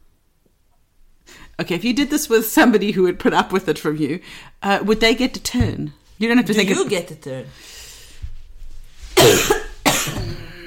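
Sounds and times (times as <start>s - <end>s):
speech: 1.6s - 7.8s
person with back pain coughing harshly: 9.2s - 10.6s.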